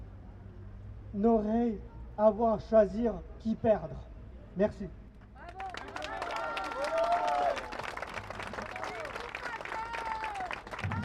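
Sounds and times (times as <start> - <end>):
speech: 1.1 - 5.0
crowd clapping: 5.4 - 11.0.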